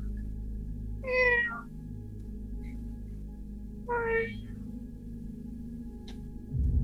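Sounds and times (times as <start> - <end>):
steady low hum: 0.0 - 6.8
cat meowing from behind a trap door: 1.0 - 1.7, 3.9 - 4.5.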